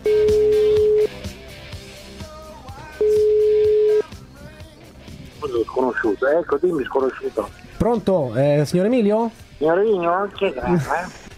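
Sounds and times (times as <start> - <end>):
telephone ringing tones from an outgoing call: 0.0 - 1.2, 3.0 - 4.1
speech: 6.2 - 11.2.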